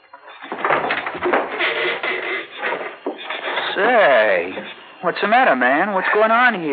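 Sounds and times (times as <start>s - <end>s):
door opened by its doorknob and swinging open, scraping: 0.1s - 4.8s
speech: 3.8s - 6.7s.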